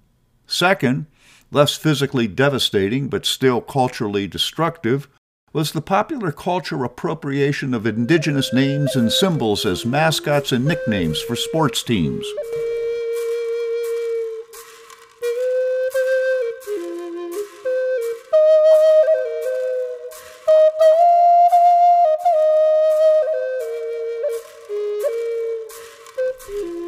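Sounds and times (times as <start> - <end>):
speech: 0.6 - 12.7
Native American flute playing a slow lilting melody: 7.8 - 26.8.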